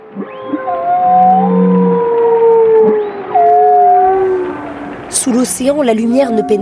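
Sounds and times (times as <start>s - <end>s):
steady low underwater wash: 0.0s - 6.2s
humpback whale calling underwater in the early morning: 0.0s - 6.5s
speech: 5.2s - 6.5s.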